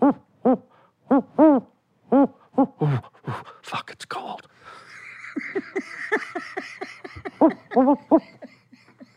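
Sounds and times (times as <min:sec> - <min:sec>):
person's voice imitating snowy owl hoots: 0:00.0 - 0:03.1
laughter: 0:04.8 - 0:09.1.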